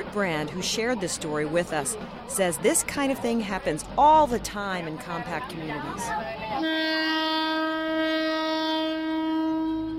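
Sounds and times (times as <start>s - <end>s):
speech: 0.1s - 7.5s
train horn blaring: 6.5s - 9.9s.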